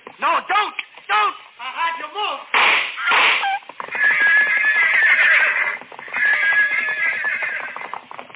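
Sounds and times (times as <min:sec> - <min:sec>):
speech: 0:00.2 - 0:01.4
gunshot: 0:02.5 - 0:03.5
pack horses neighing and rearing at a gunshot: 0:02.8 - 0:08.3.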